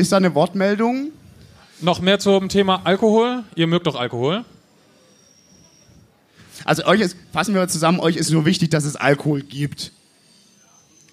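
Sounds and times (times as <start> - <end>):
speech: 0.0 - 1.2, 1.8 - 4.5, 6.6 - 10.0
S-Bahn commuter train wheels squealing high-pitched: 4.3 - 11.1.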